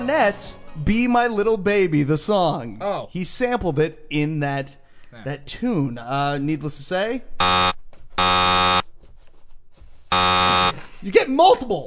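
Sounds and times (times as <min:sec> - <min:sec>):
speech: 0:00.0 - 0:07.7, 0:11.0 - 0:11.8
harsh electronic buzzer blaring: 0:07.4 - 0:08.8, 0:10.1 - 0:10.8.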